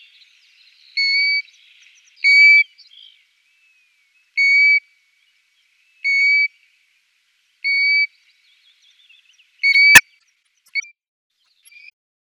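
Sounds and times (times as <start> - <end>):
European golden plover calling plaintive level whistles: 1.0 - 1.5, 2.2 - 2.7, 4.4 - 4.9, 6.0 - 6.6, 7.6 - 8.1, 9.6 - 10.1.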